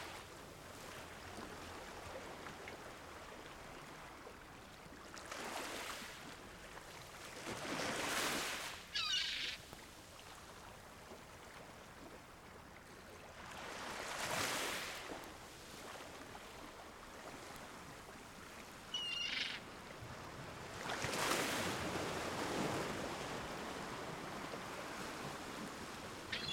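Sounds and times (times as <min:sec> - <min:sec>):
sea waves rolling in and breaking: 0:00.0 - 0:10.3, 0:13.3 - 0:26.5
gull calling in rough stacked notes: 0:08.9 - 0:09.6, 0:18.9 - 0:19.6, 0:26.3 - 0:26.5.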